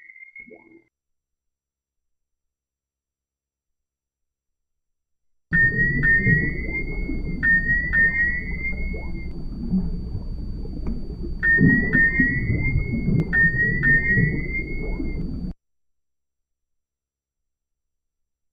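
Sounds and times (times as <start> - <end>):
synthesized whale sounds: 5.5 - 15.5.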